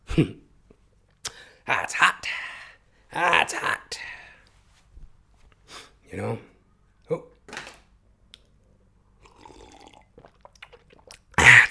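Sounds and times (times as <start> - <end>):
speech: 0.2 - 0.4, 1.7 - 2.2, 3.1 - 4.0, 6.1 - 6.5, 7.1 - 7.3
sipping and swallowing water: 9.1 - 11.6.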